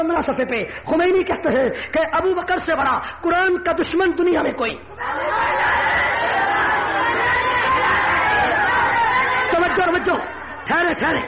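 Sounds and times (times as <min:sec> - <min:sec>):
speech: 0:00.0 - 0:05.7, 0:10.0 - 0:11.2
large crowd chanting slogans: 0:05.0 - 0:11.2
people shouting: 0:05.0 - 0:11.2.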